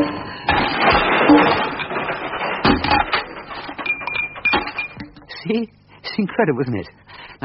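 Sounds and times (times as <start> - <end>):
Christmas crackers banging as they are pulled: 0.1 - 5.2
speech: 6.4 - 7.4.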